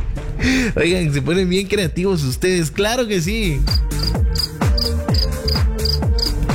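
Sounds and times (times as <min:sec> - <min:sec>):
speech: 0:00.4 - 0:03.9
crickets chirping: 0:03.7 - 0:06.5.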